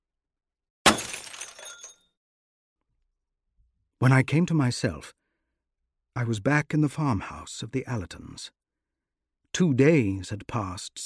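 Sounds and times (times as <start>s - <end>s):
glass lantern crashing to the ground and breaking: 0.8s - 2.1s
scattering, tinkling glass shards: 0.9s - 2.0s
speech: 4.0s - 5.2s, 6.2s - 8.6s, 9.6s - 11.0s.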